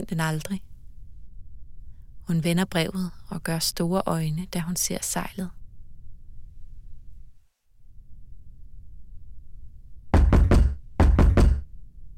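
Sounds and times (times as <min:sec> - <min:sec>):
speech: 0:00.0 - 0:00.7, 0:02.3 - 0:05.6
low steady rumble: 0:00.0 - 0:12.1
woman pounding on the door of the town bailiff: 0:10.2 - 0:11.7.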